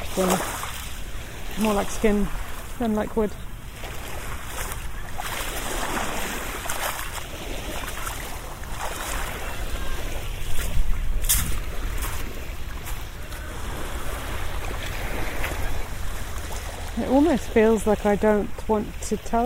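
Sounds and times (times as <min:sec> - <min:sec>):
low wind rumble against the microphone: 0:00.0 - 0:19.4
sea water sloshing and churning around a pier: 0:00.0 - 0:19.4
speech: 0:00.2 - 0:00.6, 0:01.6 - 0:03.5, 0:17.3 - 0:19.4.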